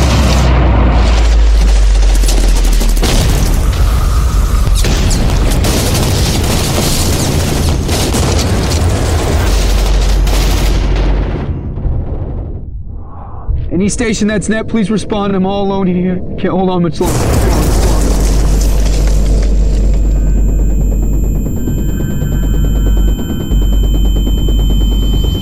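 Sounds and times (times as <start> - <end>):
heavy gunfire in combat: 0.0 - 12.7, 17.0 - 23.6
explosions in combat: 0.0 - 14.9, 16.2 - 25.4
speech: 13.8 - 17.7.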